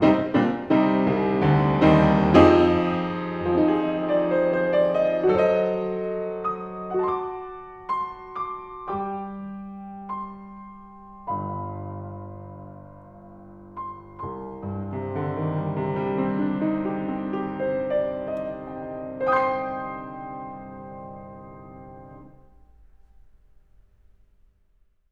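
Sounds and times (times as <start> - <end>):
piano against a wall: 0.0 - 25.0.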